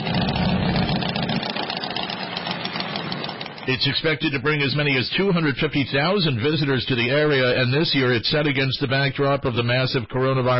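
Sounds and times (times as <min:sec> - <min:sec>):
motorcycle engines idling at a rally in rural South Dakota: 0:00.0 - 0:07.8
speech: 0:03.7 - 0:10.5.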